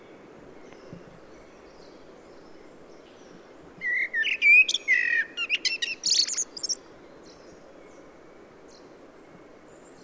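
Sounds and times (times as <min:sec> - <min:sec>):
steady low background noise: 0:00.0 - 0:10.0
common blackbird Turdus merula song: 0:00.6 - 0:08.1.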